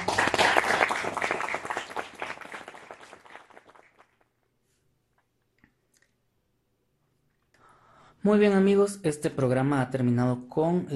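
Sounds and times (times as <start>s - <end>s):
audience applause: 0.0s - 4.2s
speech: 8.2s - 10.9s.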